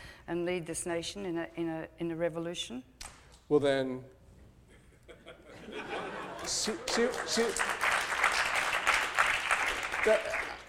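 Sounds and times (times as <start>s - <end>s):
speech: 0.3s - 4.2s, 5.7s - 7.8s, 10.0s - 10.4s
audience chuckles and laughter: 5.1s - 7.1s
audience applause at a live book interview: 6.3s - 10.6s.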